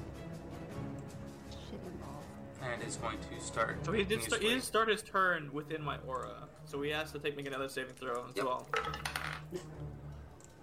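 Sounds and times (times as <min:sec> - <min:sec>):
speech: 0:02.0 - 0:09.8
dice rolling on a hard surface in a tabletop game: 0:08.0 - 0:09.5.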